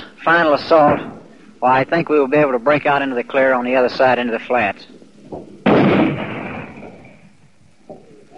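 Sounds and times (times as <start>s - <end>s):
speech: 0.2s - 5.6s
artillery and mortar fire with 75 mm guns landing on a hill: 0.7s - 1.5s, 5.4s - 7.4s
faint dull thud: 5.3s - 7.2s.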